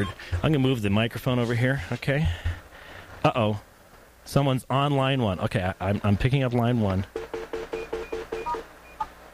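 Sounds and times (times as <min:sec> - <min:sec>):
speech: 0:00.0 - 0:02.5, 0:03.2 - 0:07.2
desk phone keypad tones while turning off call forwarding on an office phone: 0:07.4 - 0:09.1.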